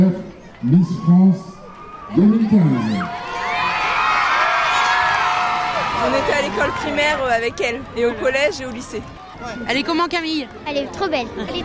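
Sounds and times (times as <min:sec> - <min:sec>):
speech: 0:00.0 - 0:01.5, 0:02.1 - 0:03.2, 0:06.0 - 0:11.6
crowd of children cheering and shouting: 0:01.7 - 0:08.0
children applauding: 0:03.3 - 0:06.9.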